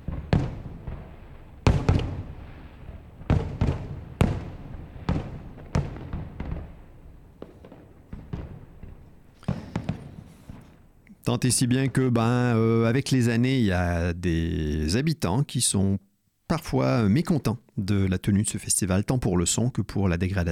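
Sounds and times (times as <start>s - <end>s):
festival fireworks on an island in the Saint Lawrence River: 0.0s - 13.1s
speech: 11.3s - 20.4s.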